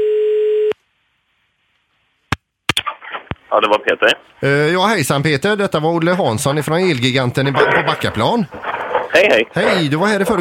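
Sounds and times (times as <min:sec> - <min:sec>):
telephone ringback tone on an outgoing call: 0:00.0 - 0:00.8
speech: 0:03.5 - 0:10.3.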